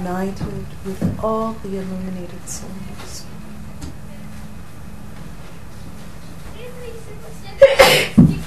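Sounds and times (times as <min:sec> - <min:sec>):
speech: 0:00.0 - 0:03.3
person sneezing: 0:07.6 - 0:08.2.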